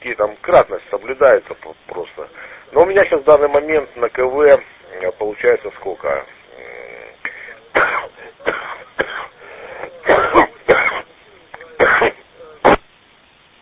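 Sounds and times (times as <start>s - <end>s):
speech: 0.2s - 6.4s
man clearing throat over a shortwave amateur radio link: 6.5s - 12.9s
man coughing over a shortwave amateur radio link: 6.7s - 12.9s.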